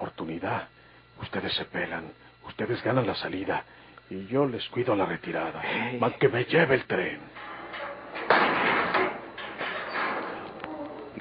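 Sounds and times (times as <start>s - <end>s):
speech: 0.4s - 7.9s
grinding scraping noise of prison cell door: 7.0s - 11.1s
prison cell door being opened: 7.3s - 11.1s.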